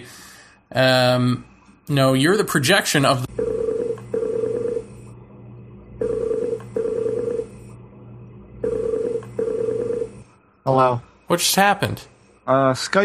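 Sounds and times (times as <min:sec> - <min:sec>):
speech: 0:00.0 - 0:03.5, 0:10.7 - 0:13.0
iPod ringing with an incoming Skype call: 0:03.3 - 0:04.9, 0:06.0 - 0:07.7, 0:08.6 - 0:10.3.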